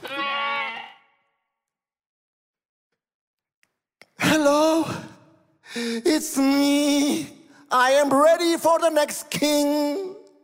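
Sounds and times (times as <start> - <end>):
sheep bleating with a wavering nasal tone: 0.0 - 1.2
speech: 4.4 - 5.0, 5.8 - 10.2.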